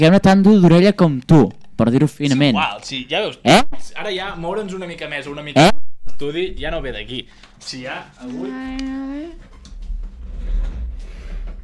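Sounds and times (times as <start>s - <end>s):
speech: 0.0s - 9.5s
chairs dragged across an indoor floor: 9.2s - 11.6s.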